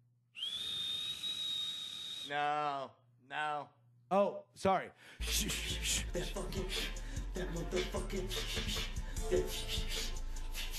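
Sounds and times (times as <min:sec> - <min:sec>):
person whistling shrilly: 0:00.3 - 0:02.6
speech: 0:02.3 - 0:10.1.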